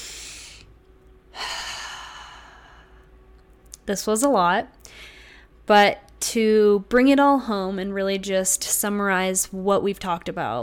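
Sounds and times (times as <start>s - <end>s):
person taking a deep breath during a guided wellness exercise: 0.0s - 0.7s, 1.3s - 3.1s
speech: 3.9s - 5.1s, 5.7s - 10.6s.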